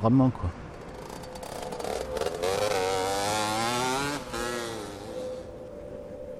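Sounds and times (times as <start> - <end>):
speech: 0.0 - 0.6
moped engine revving and idling: 0.7 - 5.6.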